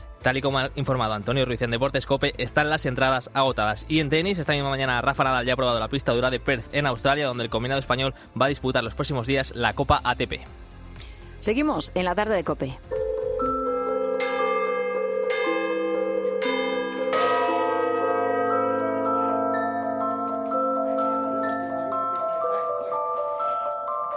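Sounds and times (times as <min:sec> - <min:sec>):
speech: 0:00.2 - 0:10.6, 0:11.4 - 0:13.0
church tower bells of Santiago el Mayor in Utrera Spain ringing in a steady peal: 0:12.9 - 0:24.1.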